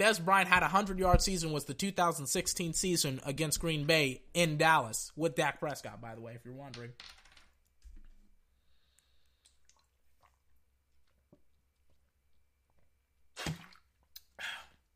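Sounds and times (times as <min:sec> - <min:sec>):
speech: 0:00.0 - 0:07.2
wet mouth clicks while chugging water with vitamin C: 0:09.4 - 0:10.4, 0:13.4 - 0:14.4.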